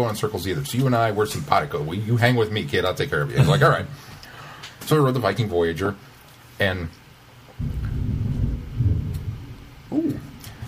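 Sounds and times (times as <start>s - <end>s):
speech: 0.0s - 4.1s, 4.8s - 7.0s, 7.6s - 7.8s
crack of thunder: 7.6s - 10.2s.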